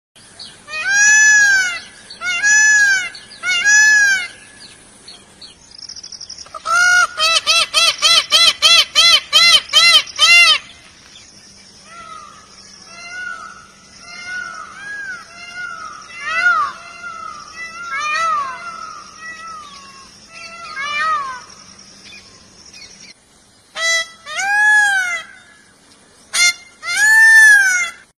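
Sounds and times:
Indian peafowl calling: 0.2s - 11.0s, 11.8s - 28.1s.

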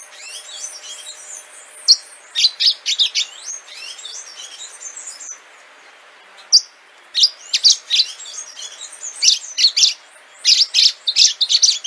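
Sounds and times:
Orange-fronted yellow finch song: 0.0s - 11.8s.

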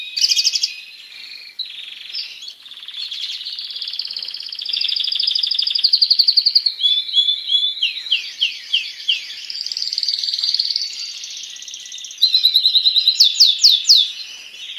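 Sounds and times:
Spanish timbrado canary song: 0.0s - 14.7s.

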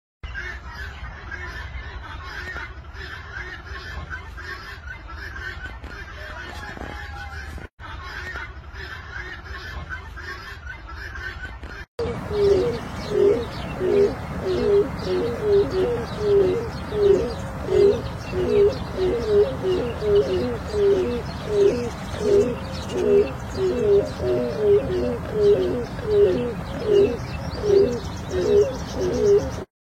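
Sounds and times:
black crowned crane calling: 12.0s - 29.7s.

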